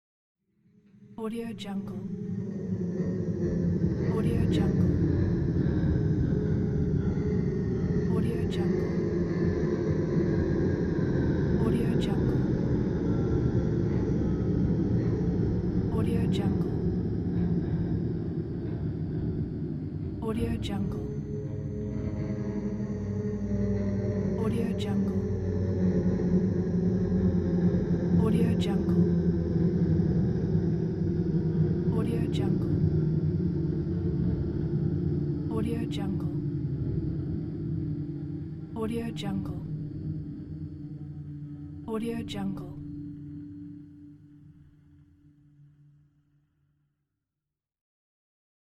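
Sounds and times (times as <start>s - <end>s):
horror drone: 0.6s - 46.6s.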